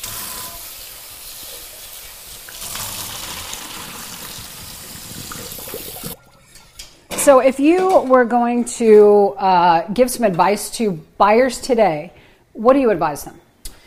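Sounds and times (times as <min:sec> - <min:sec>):
water pouring out as cooked tortellini is drained: 0:00.0 - 0:06.2
speech: 0:07.2 - 0:13.4.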